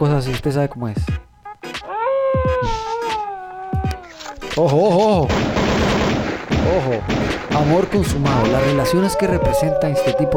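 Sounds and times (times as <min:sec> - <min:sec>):
speech: 0:00.0 - 0:01.3, 0:02.4 - 0:02.9, 0:04.6 - 0:10.3
wolf howl sound effect: 0:01.8 - 0:04.4, 0:08.2 - 0:10.3.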